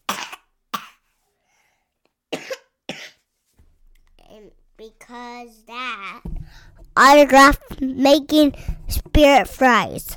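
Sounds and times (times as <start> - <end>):
person sick with a cough coughing: 0.0 - 1.0, 2.3 - 3.2
speech: 4.4 - 10.1.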